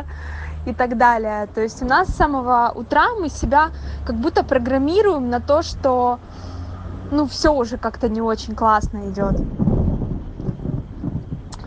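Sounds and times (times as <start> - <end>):
speech: 0.6 - 6.5, 7.1 - 9.7
thunder rumbling: 1.4 - 11.6
thunder crackle: 7.2 - 11.6.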